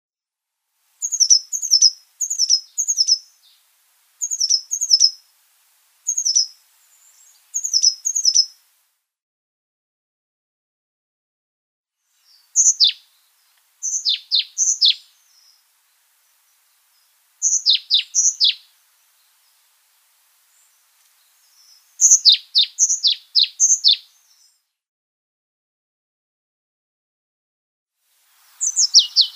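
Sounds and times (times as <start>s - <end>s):
Tenerife blue tit singing: 1.0s - 3.6s, 4.2s - 5.2s, 6.1s - 8.6s, 12.2s - 15.6s, 16.9s - 19.5s, 20.5s - 24.5s, 28.6s - 29.3s.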